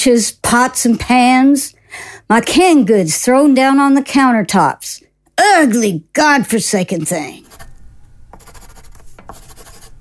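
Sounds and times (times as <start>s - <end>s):
speech: 0.0s - 7.4s
pen scribbling on a piece of paper: 7.4s - 7.7s, 8.4s - 9.9s.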